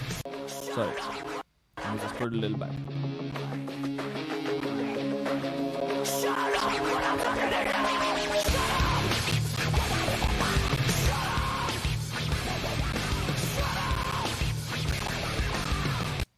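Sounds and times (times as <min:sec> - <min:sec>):
speech: 0:00.8 - 0:01.3, 0:02.0 - 0:03.0, 0:06.6 - 0:08.8
heavy rock song with distorted guitars and pounding low end: 0:02.9 - 0:16.2
harsh screamed vocals: 0:06.1 - 0:09.1, 0:10.9 - 0:11.9, 0:13.4 - 0:14.5.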